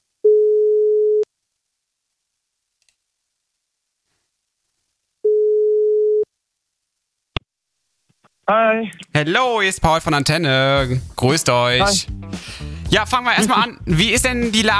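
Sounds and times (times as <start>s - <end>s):
telephone ringing tone on an outgoing call: 0.3s - 1.3s, 5.3s - 6.3s
speech: 8.5s - 14.7s.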